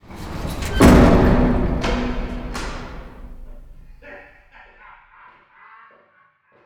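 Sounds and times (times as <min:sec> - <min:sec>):
cell door closing: 0:00.0 - 0:04.0.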